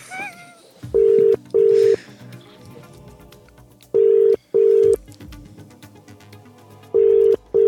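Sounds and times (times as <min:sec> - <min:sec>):
outgoing phone call ringing tone on a phone connected to a recorder: 0:01.0 - 0:02.0, 0:04.0 - 0:05.0, 0:07.0 - 0:07.6.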